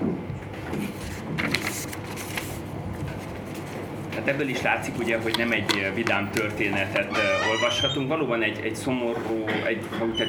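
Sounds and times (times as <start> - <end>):
paper sheets rustling and crinkling while searching for a page: 0.6 - 4.3
speech: 4.2 - 10.2.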